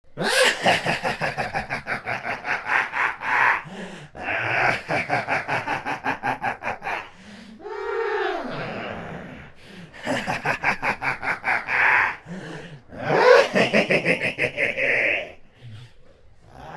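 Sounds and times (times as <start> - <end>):
deranged android laughing: 0.2 - 7.1, 10.0 - 15.4.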